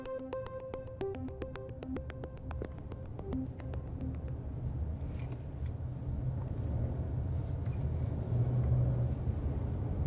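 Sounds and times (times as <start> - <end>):
road hum: 1.5 - 10.0
low engine rumble of a car driving: 2.3 - 10.0.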